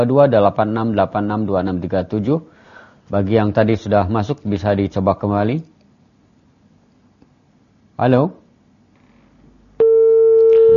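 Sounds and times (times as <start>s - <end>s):
speech: 0.0s - 5.7s, 8.0s - 8.4s
telephone busy tone on a dropped call-in line: 9.8s - 10.7s.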